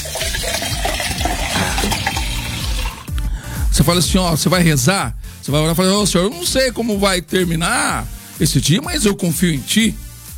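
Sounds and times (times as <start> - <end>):
water with Tahiti lime pouring into a glass: 0.0 - 3.1
speech: 3.8 - 10.0.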